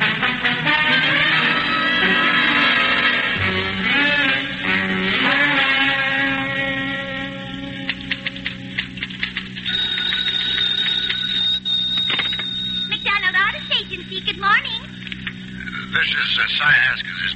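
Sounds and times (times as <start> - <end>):
low hum: 0.0 - 17.3
telephone ringing with shrill electronic tone and warbling trills: 9.6 - 14.5.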